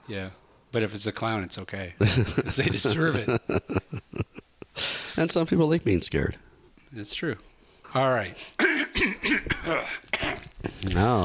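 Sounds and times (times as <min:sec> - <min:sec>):
speech: 0:00.1 - 0:04.0, 0:05.2 - 0:11.2
laughter: 0:02.0 - 0:04.7
person with a cold clearing throat: 0:08.6 - 0:10.6
person with a cold coughing: 0:08.6 - 0:10.6.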